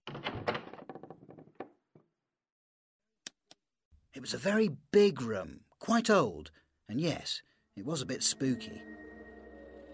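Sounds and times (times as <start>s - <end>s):
hotel room door rattling and thumping open: 0.0s - 1.8s
speech: 4.2s - 9.0s.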